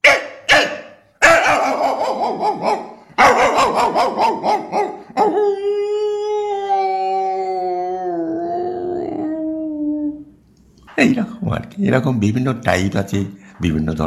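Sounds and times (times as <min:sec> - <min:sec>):
dog barking and howling on seeing another dog: 0:00.0 - 0:10.2
speech: 0:11.0 - 0:14.0.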